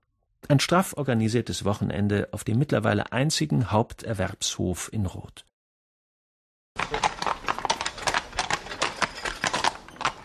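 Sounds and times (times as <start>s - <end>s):
speech: 0.5s - 5.5s
horse-drawn historic carriage hooves clattering on cobblestone paving in a town street: 6.8s - 10.2s.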